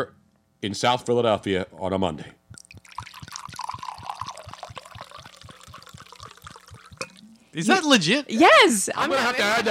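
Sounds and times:
speech: 0.0 - 2.4, 7.6 - 9.6
wine pouring into a glass: 2.5 - 7.6.

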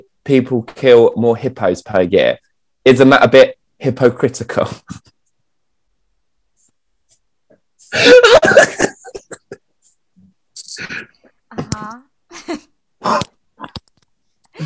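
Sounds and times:
speech: 0.0 - 5.2, 7.9 - 8.7
harsh coughing: 7.9 - 9.6, 13.0 - 13.8
throat clearing: 13.0 - 13.8.

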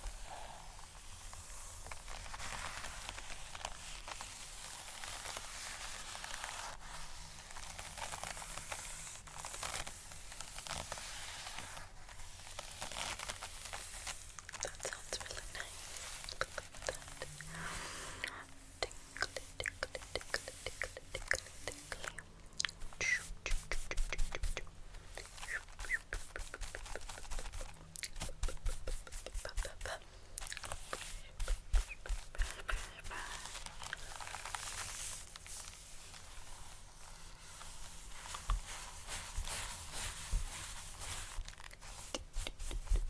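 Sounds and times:
very close brushing: 0.0 - 22.2, 22.8 - 43.0.

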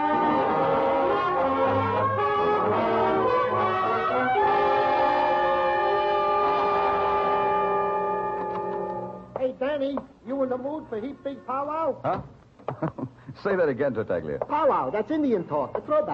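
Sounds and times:
train horn blaring with a multi-note chord: 0.0 - 9.3
speech: 9.9 - 16.1.

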